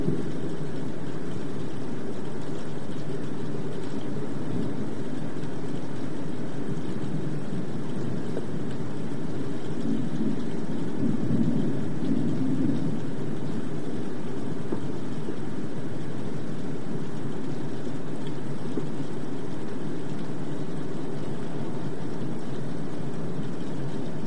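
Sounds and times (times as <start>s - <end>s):
rain patters on greenhouse glass: 0.0s - 24.2s
thunder rumble: 9.7s - 15.4s.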